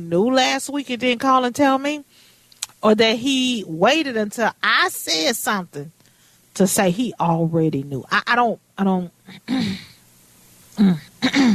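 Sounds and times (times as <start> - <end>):
speech: 0.0 - 6.0, 6.6 - 9.9, 10.8 - 11.5
person clearing throat: 9.3 - 10.0, 10.8 - 11.5.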